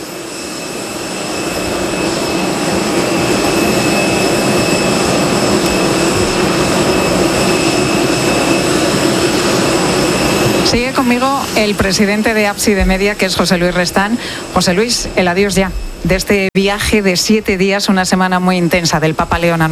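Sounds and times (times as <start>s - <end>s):
jet airliner engines running on the runway before taxiing for takeoff: 0.0s - 19.7s
speech: 11.0s - 19.7s.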